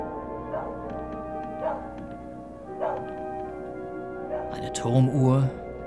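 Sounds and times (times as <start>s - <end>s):
dog barking outside a lonely house: 0.2s - 4.6s
speech: 4.6s - 5.6s.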